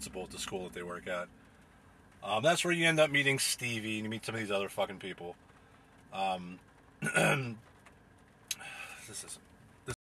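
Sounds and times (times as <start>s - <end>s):
speech: 0.1s - 1.5s, 2.2s - 5.5s, 6.1s - 7.7s, 9.1s - 9.4s
throat clearing: 7.0s - 7.6s.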